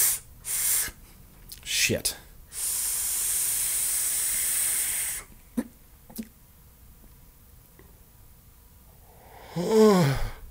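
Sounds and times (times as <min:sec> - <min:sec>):
hiss of vapour drawn through an e-cigarette atomizer with adjustable airflow: 0:00.0 - 0:01.0, 0:02.5 - 0:05.3
speech: 0:01.9 - 0:02.2, 0:09.6 - 0:10.3.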